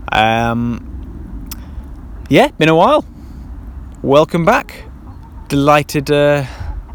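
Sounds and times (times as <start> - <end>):
faint outdoor hush: 0.0 - 6.9
speech: 0.2 - 0.9, 2.3 - 3.1, 4.0 - 4.9, 5.5 - 6.6
hen giving drawn-out throaty clucking calls: 4.6 - 5.6.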